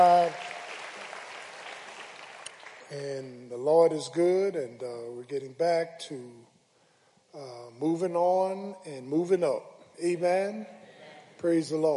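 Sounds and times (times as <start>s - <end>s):
crowd applauding: 0.0s - 3.0s
speech: 2.9s - 6.5s, 7.4s - 10.8s, 11.4s - 11.9s.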